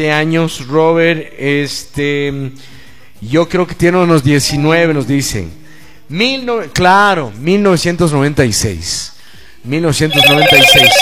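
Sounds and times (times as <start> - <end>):
speech: 0.0 - 11.0
telephone ringing for an incoming call: 10.0 - 11.0.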